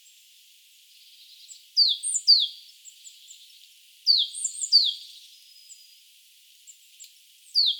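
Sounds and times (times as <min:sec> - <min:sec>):
Great tit Parus major calls: 0:01.0 - 0:05.8, 0:07.5 - 0:07.7
speech: 0:01.8 - 0:02.7.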